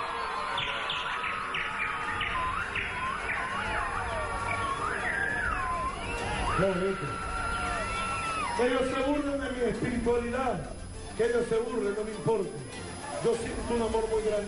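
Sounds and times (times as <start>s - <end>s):
bird chirping and tweeting: 0.2s - 6.7s
murmured voices: 0.8s - 14.4s
speech: 8.6s - 14.4s.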